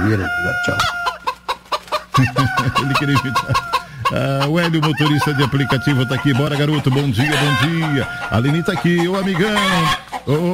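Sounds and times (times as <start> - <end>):
speech: 0.0 - 1.0, 2.2 - 10.5
rooster crowing: 0.0 - 1.3, 2.2 - 10.0
rooster clucking: 0.0 - 10.5
laughter: 2.1 - 10.5.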